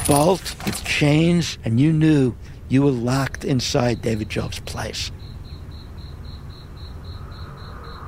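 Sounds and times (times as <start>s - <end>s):
speech: 0.1s - 5.2s
crickets chirping: 3.5s - 8.0s.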